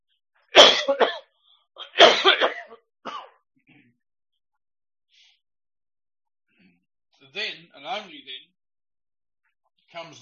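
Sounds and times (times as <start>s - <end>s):
coughing from an irritated throat: 0.6s - 3.9s
speech: 7.4s - 8.5s, 9.9s - 10.2s.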